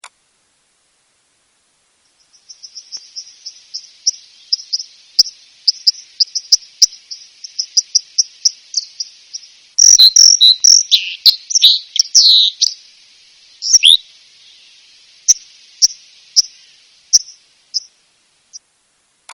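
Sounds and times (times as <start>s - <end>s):
white-throated dipper: 2.5s - 12.8s, 13.6s - 14.0s.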